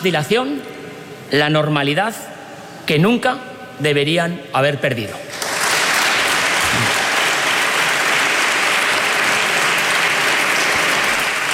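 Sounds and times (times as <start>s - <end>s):
speech: 0.0s - 2.3s, 2.9s - 5.3s
applause from many people in a large hall of a regional parliament: 5.3s - 11.5s.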